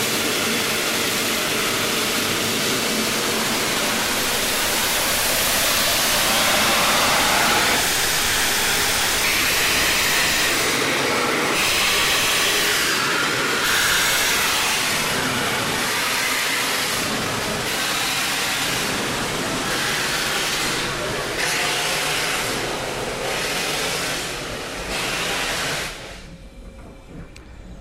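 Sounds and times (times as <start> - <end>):
steam locomotive hauling a train chuffing: 0.0 - 27.7.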